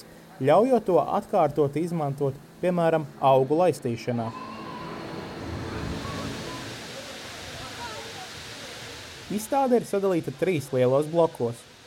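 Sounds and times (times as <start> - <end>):
speech: 0.0 - 4.5, 9.3 - 11.7
faint murmur of voices: 4.0 - 9.4
water sprayed as fine droplets into fog at an expo site: 4.4 - 11.8.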